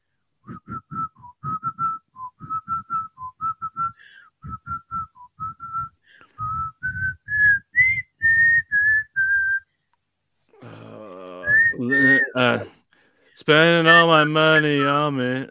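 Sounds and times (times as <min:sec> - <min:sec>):
person whistling a catchy pop tune: 0:00.4 - 0:09.7, 0:11.4 - 0:12.6
speech: 0:11.8 - 0:12.7, 0:13.4 - 0:15.4
people laughing: 0:13.7 - 0:15.1.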